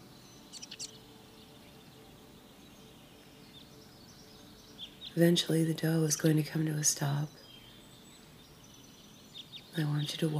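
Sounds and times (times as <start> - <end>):
birds chirping in a forest: 0.0 - 10.3
speech: 5.2 - 7.4, 9.8 - 10.3.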